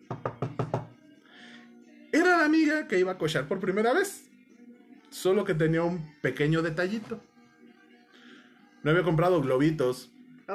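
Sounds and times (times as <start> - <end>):
knocking on a door: 0.0 - 1.0
speech: 2.1 - 4.3, 5.1 - 7.3, 8.8 - 10.5.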